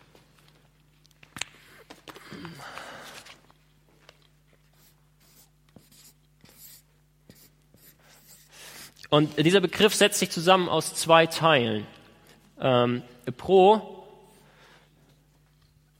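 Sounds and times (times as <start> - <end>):
faint hum: 0.0 - 15.9
pen strokes writing a word on a board: 4.8 - 8.5
speech: 9.1 - 12.0, 12.6 - 13.9.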